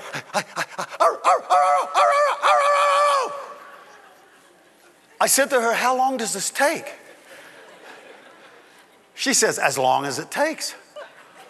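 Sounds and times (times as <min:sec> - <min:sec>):
laughter: 0:00.0 - 0:05.4, 0:06.8 - 0:09.4, 0:10.8 - 0:11.4
speech: 0:00.4 - 0:00.6, 0:05.2 - 0:07.0, 0:09.2 - 0:10.8
dog barking: 0:01.0 - 0:02.7.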